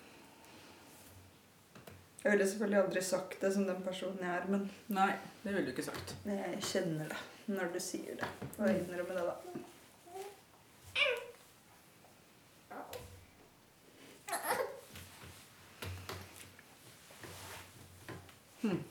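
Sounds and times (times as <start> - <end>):
speech: 2.2 - 9.8
baby babbling and cooing: 10.0 - 11.4, 12.7 - 13.2, 14.3 - 14.8
baby squealing: 11.0 - 11.3, 14.3 - 14.8.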